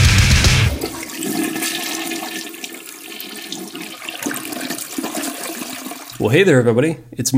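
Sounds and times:
toilet flushing with bowl draining and refilling: 0.7 - 6.2
speech: 6.2 - 7.3.

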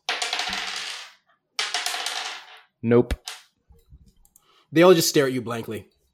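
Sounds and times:
dice rattling and tumbling across a hard surface: 0.0 - 2.6
speech: 2.8 - 3.3, 4.7 - 5.9.

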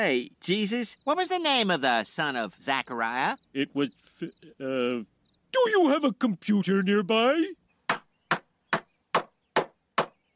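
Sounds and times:
speech: 0.0 - 7.6
hammer striking a nail into a wooden door: 7.9 - 10.3.

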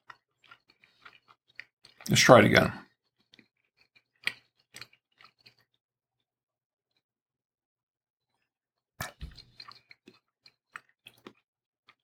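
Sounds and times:
chewing a piece of steak: 0.0 - 2.1, 2.8 - 5.8, 8.3 - 12.0
speech: 2.1 - 2.8.

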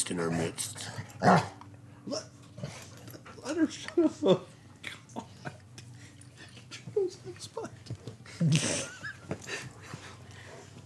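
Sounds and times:
speech: 0.1 - 2.3, 3.6 - 4.5
dogs growling and snarling: 0.8 - 3.4.

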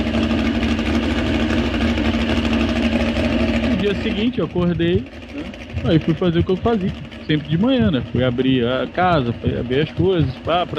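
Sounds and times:
car engine idling: 0.0 - 10.7
speech: 3.9 - 10.7.

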